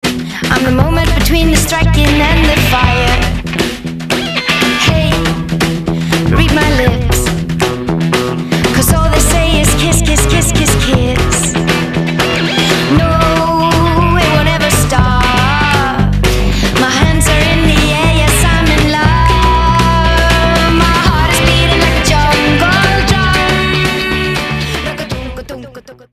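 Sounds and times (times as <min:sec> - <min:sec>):
jungle drum: 0:00.0 - 0:25.6.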